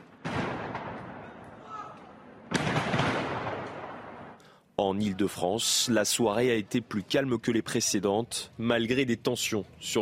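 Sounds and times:
fireworks stockpile exploding near homes in Strasbourg: 0:00.0 - 0:01.6, 0:02.3 - 0:04.4
speech: 0:04.8 - 0:09.9.

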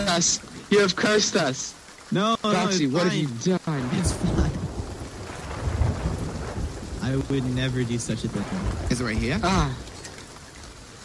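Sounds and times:
speech: 0:00.0 - 0:04.4, 0:07.1 - 0:09.9
steady wash of rain: 0:00.0 - 0:11.0
low rumbling thunder crash during a storm: 0:03.9 - 0:10.1.

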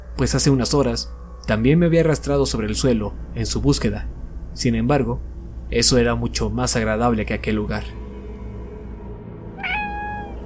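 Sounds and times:
steady low hum: 0:00.0 - 0:10.4
speech: 0:00.2 - 0:08.0
muffled cat meowing: 0:09.6 - 0:10.4.

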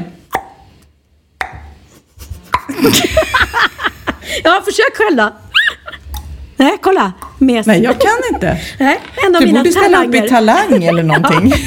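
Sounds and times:
mouth pops imitating a tennis rally: 0:00.3 - 0:01.8
speech: 0:02.7 - 0:03.7, 0:04.3 - 0:05.4, 0:06.6 - 0:11.6
laughter: 0:02.7 - 0:04.4, 0:07.8 - 0:09.4, 0:10.5 - 0:11.6.

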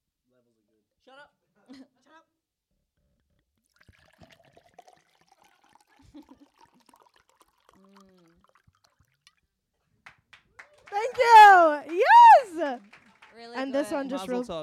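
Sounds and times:
water pouring into a glass: 0:03.6 - 0:09.5
speech: 0:11.0 - 0:14.6.

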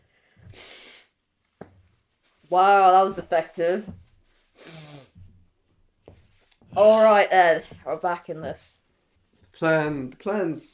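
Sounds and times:
person blowing their nose: 0:00.4 - 0:01.2, 0:04.4 - 0:05.2
person sniffing: 0:00.5 - 0:01.2, 0:04.5 - 0:05.2
speech: 0:02.5 - 0:04.0, 0:06.8 - 0:08.8, 0:09.6 - 0:10.7.

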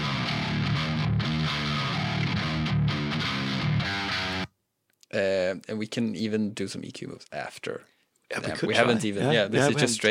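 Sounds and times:
distorted djent electric guitar palm-muted riff from a Strat through an amp preset: 0:00.0 - 0:04.5
speech: 0:05.2 - 0:10.0.

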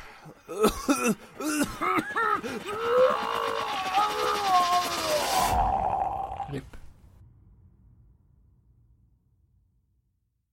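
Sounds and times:
speech: 0:00.2 - 0:05.7, 0:06.5 - 0:06.8
rough coughing and throat clearing: 0:00.5 - 0:02.4
drawn-out strained vocal groan: 0:02.6 - 0:06.8.

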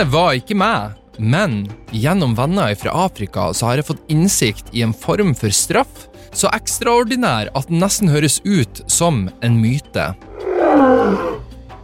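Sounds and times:
speech: 0:00.0 - 0:11.4
deep rumbling lion roar: 0:10.2 - 0:11.5.

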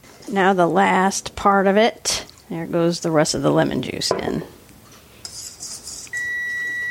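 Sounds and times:
speech: 0:00.2 - 0:04.6
soft hissy scraping: 0:04.8 - 0:06.2
kitchen timer sounding a steady electronic tone: 0:06.1 - 0:06.8.

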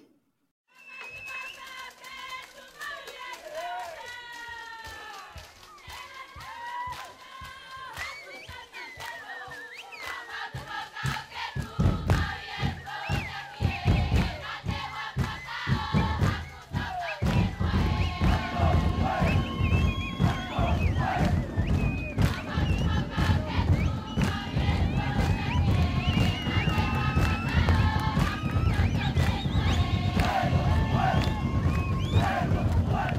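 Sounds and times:
feather-clad women singing as they dance: 0:01.4 - 0:33.1
rhythmic stamping thuds of a ceremonial bird dance: 0:04.8 - 0:33.1
loud deep drums setting the rhythm: 0:11.1 - 0:33.1.

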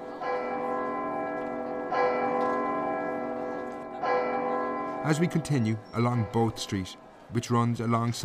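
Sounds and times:
church bell tolling in the belfry of a priory in Dublin: 0:00.0 - 0:07.2
speech: 0:05.0 - 0:08.2.

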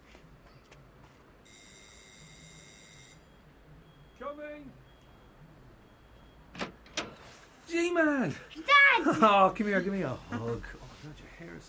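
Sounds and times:
electronic doorbell ringing with bright buzzing tone: 0:01.5 - 0:03.3
speech: 0:04.3 - 0:04.9, 0:07.7 - 0:11.6.

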